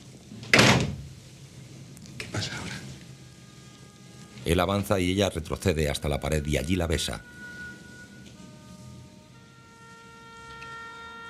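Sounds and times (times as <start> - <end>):
quiet hum: 0.0 - 11.2
door being closed with a brief rattle: 0.5 - 1.1
speech: 2.4 - 2.7, 4.5 - 7.4.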